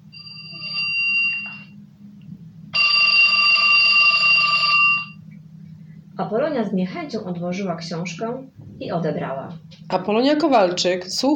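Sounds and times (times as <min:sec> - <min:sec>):
low steady hum: 0:00.0 - 0:11.3
old telephone bell ringing sharply: 0:00.2 - 0:01.8, 0:02.8 - 0:05.2
speech: 0:06.2 - 0:11.3.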